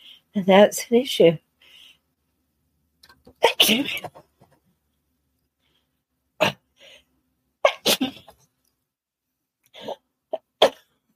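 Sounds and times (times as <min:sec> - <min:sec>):
speech: 0:00.4 - 0:01.4, 0:03.4 - 0:04.2
person coughing: 0:03.4 - 0:04.1, 0:07.7 - 0:08.4
person sneezing: 0:03.4 - 0:04.2, 0:07.7 - 0:08.4.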